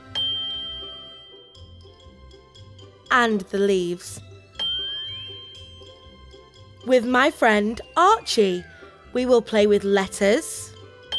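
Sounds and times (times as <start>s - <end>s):
bell chime ringing: 0.0s - 3.4s, 4.6s - 7.2s
speech: 3.1s - 4.3s, 6.8s - 10.7s.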